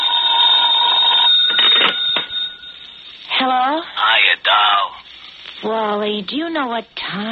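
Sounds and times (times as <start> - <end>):
telephone bell ringing for an incoming call: 0.0 - 3.1
speech: 3.4 - 5.0, 5.6 - 7.2.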